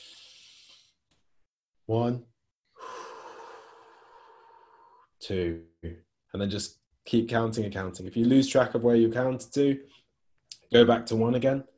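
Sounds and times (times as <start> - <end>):
deep breathing during a relaxation exercise: 0.0 - 1.0, 2.6 - 5.2
speech: 1.9 - 2.3, 5.3 - 10.0, 10.7 - 11.7
voiced gasp: 2.7 - 5.1.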